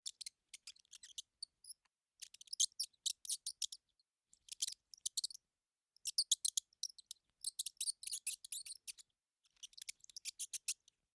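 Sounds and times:
mouse squeaking: 0.0s - 5.4s, 6.0s - 10.9s.

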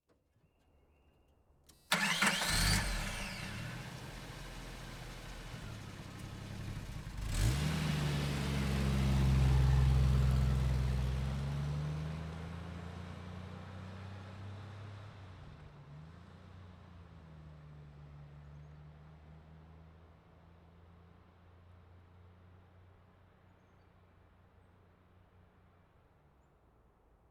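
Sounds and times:
SUV driving by: 1.9s - 12.6s.

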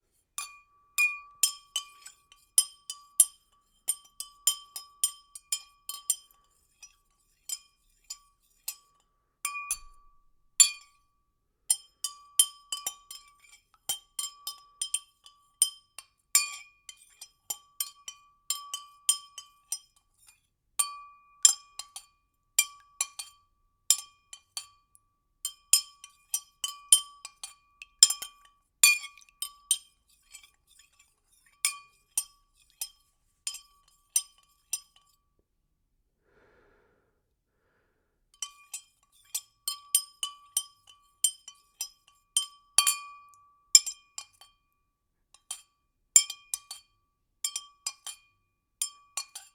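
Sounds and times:
stirring liquid in a glass: 0.4s - 11.1s, 11.7s - 35.2s, 38.4s - 44.7s, 45.4s - 49.5s.

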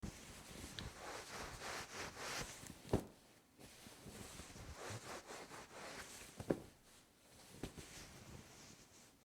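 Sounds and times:
towel rubbing while drying off: 0.0s - 9.0s.

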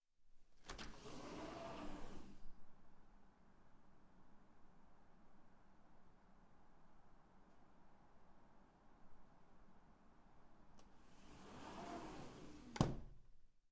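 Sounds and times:
sliding glass door: 0.6s - 2.5s, 10.9s - 13.1s.

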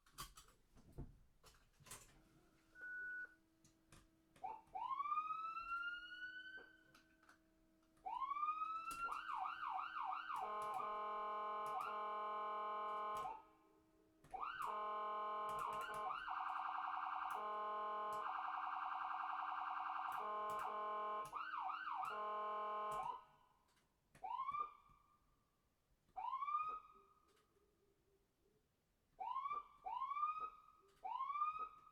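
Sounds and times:
ambulance siren: 4.4s - 7.1s, 8.0s - 13.5s, 14.3s - 23.4s, 24.2s - 25.1s, 26.2s - 27.2s, 29.2s - 31.9s.

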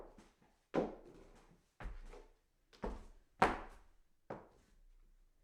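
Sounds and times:
footsteps walking up hollow wood stairs: 0.8s - 3.9s.

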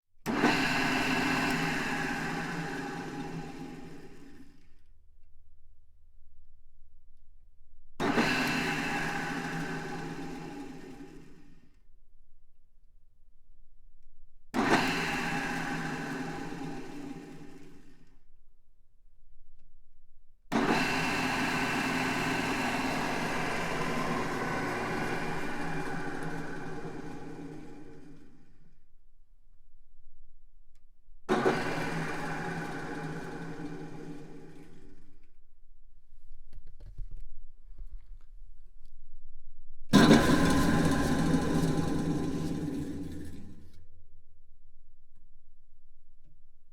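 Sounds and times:
large drill press: 0.3s - 4.8s, 8.0s - 11.6s, 14.6s - 18.2s, 20.5s - 28.8s, 31.3s - 35.3s, 40.0s - 43.9s.

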